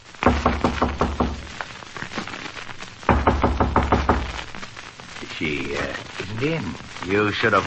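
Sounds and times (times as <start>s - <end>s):
firm knocking on a hotel room door: 0.2s - 1.5s, 3.1s - 4.5s
speech: 5.4s - 7.6s.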